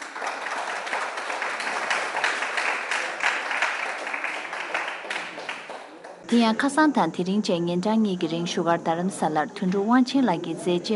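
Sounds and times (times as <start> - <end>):
audience applause at an award announcement for a film festival's audience prize: 0.0 - 6.2
speech: 6.3 - 10.9.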